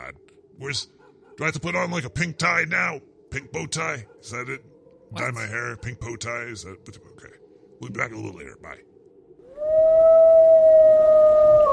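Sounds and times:
speech: 0.6 - 8.9
wolf howling: 9.4 - 11.7.

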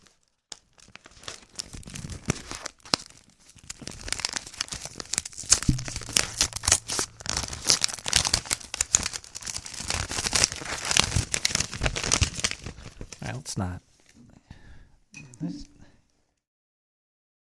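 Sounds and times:
mailed paper letter envelope being ripped open: 0.5 - 13.3.

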